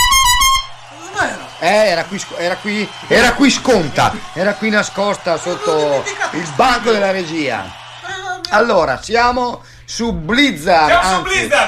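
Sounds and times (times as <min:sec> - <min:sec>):
small handheld horn honking: 0:00.0 - 0:00.8
laughter: 0:01.5 - 0:07.9
speech: 0:01.6 - 0:07.8, 0:08.5 - 0:11.6.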